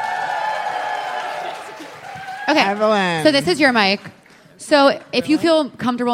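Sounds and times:
live audience applauding and cheering: 0.0 - 5.2
speech: 2.5 - 6.1.

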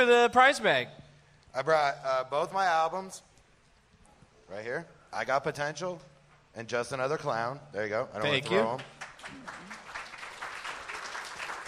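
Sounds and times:
speech: 0.0 - 3.3, 4.5 - 9.8
crowd applauding: 8.4 - 11.6.

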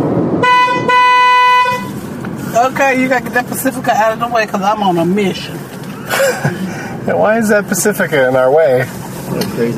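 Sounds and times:
road rumble of traffic heard from inside a car: 0.0 - 9.7
car horn honking: 0.4 - 2.0
speech: 2.6 - 9.7.

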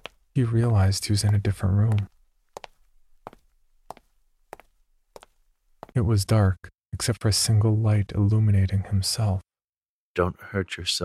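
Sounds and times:
slow heel-then-toe footsteps on a hard floor: 0.0 - 6.0
speech: 0.4 - 2.2, 6.0 - 9.5, 10.2 - 11.0.

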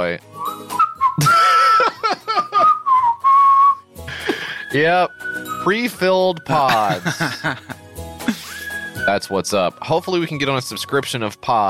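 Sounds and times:
speech: 0.0 - 0.4, 1.2 - 1.5, 4.7 - 7.7, 9.1 - 11.6
person whistling from a played video: 0.4 - 5.8, 8.3 - 9.3
brief bursts of laughter or voice noise: 1.2 - 2.8, 6.7 - 8.6.

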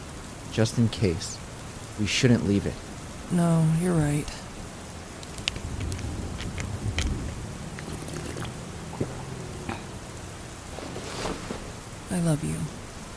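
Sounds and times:
steady rain falling: 0.0 - 13.1
speech: 0.6 - 1.4, 2.0 - 4.4, 12.2 - 12.8
faint low rumble: 4.3 - 13.1.

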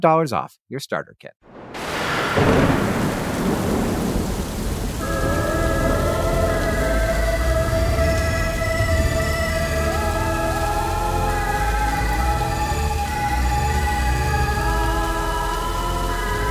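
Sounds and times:
speech: 0.0 - 1.6, 2.4 - 2.8
steady pouring rain: 1.4 - 16.5
thunderclap rolling into low rumble: 1.5 - 10.2
sustained eerie tonal drone: 5.0 - 16.5.

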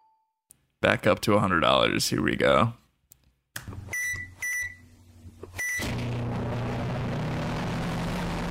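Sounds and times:
speech: 0.8 - 2.8
microwave oven humming with a harsh distorted drone: 3.8 - 8.4.

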